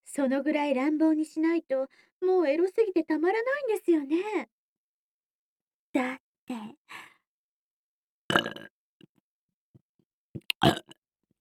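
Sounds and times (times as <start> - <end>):
speech: 0.2 - 4.6, 6.0 - 7.1, 8.3 - 8.7, 10.6 - 10.9
gurgling burps: 8.3 - 8.7, 10.5 - 11.0.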